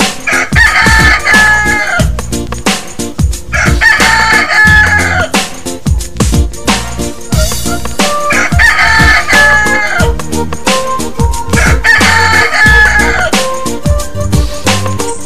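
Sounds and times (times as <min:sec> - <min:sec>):
bouncy busy musical backing: 0:00.0 - 0:15.2
voices imitating a rooster crow in a game: 0:00.3 - 0:02.2, 0:03.5 - 0:05.4, 0:08.2 - 0:10.2, 0:11.6 - 0:13.4.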